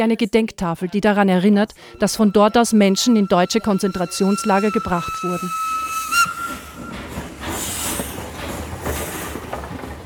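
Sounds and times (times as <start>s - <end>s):
speech: 0.0s - 6.4s
steam train whistle at a station: 1.8s - 8.6s
steam train hissing steam: 1.9s - 9.7s.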